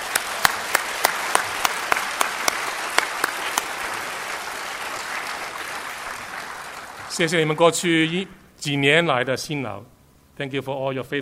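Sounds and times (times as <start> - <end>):
church fellowship congregation applauding in thanks: 0.0 - 7.9
speech: 7.2 - 11.1.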